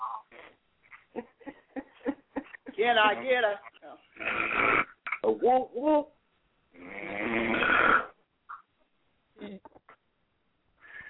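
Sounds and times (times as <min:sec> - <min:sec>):
speech: 0:02.8 - 0:04.4, 0:05.3 - 0:06.2
person snoring: 0:04.2 - 0:05.0, 0:06.8 - 0:08.2.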